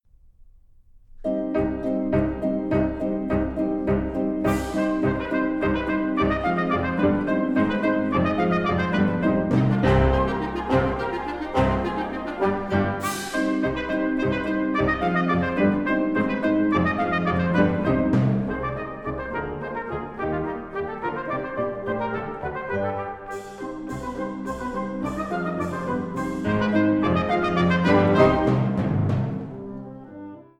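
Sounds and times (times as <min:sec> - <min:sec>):
timpani: 0:01.2 - 0:30.5.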